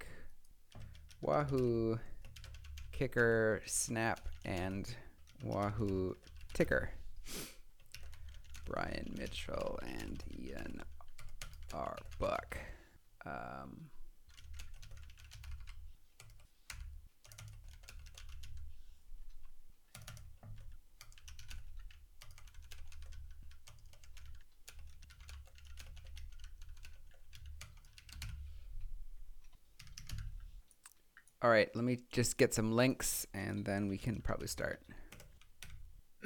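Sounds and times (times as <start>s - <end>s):
typing on a computer keyboard: 0.2s - 3.3s, 4.1s - 6.9s, 7.8s - 12.6s, 14.2s - 28.6s, 29.4s - 30.8s, 34.9s - 35.9s
speech: 1.2s - 2.1s, 3.0s - 7.4s, 8.7s - 10.9s, 11.7s - 14.0s, 31.4s - 35.0s.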